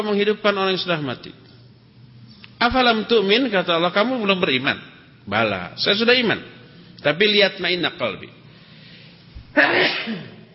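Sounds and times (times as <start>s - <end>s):
speech: 0.0s - 1.4s, 2.6s - 8.4s, 9.5s - 10.4s
person sneezing during an Islamic religious lecture: 9.5s - 10.5s.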